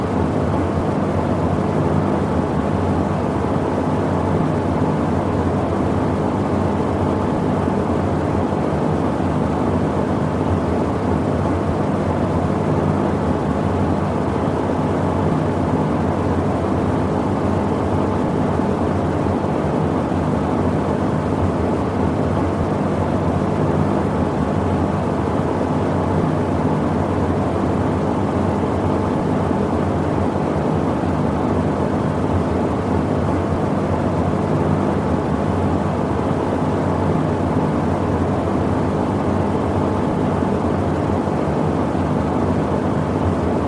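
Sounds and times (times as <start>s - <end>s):
box fan running at a constant speed: 0.0s - 43.6s.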